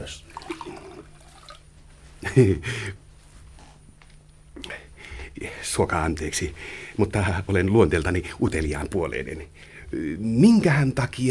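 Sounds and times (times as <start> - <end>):
liquid poured into an empty glass: 0.3 - 1.6
speech: 2.2 - 3.0, 5.6 - 11.2.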